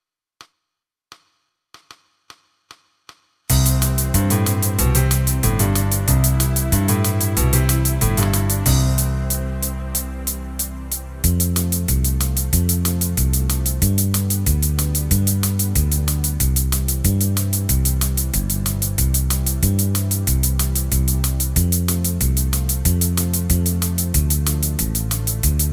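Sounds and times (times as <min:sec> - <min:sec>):
Irish country pop backing track: 0:03.5 - 0:25.7.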